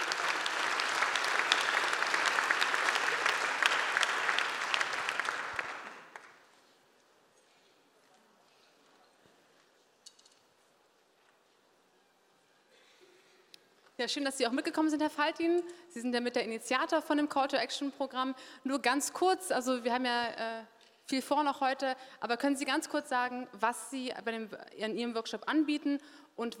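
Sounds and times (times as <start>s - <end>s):
audience applause: 0.0s - 6.4s
speech: 14.0s - 26.5s.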